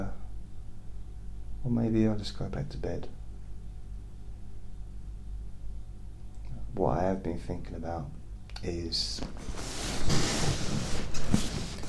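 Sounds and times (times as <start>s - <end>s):
speech: 1.6s - 3.2s, 6.8s - 10.2s
soft rustling: 9.0s - 11.8s
chair creaking as someone shifts their weight: 9.2s - 11.8s.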